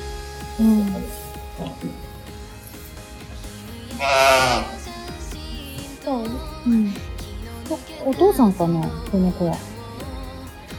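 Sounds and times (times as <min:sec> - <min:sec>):
speech: 0:00.6 - 0:02.0, 0:04.0 - 0:04.7, 0:08.2 - 0:09.7
very small lamb bleating on a farm: 0:03.9 - 0:04.9.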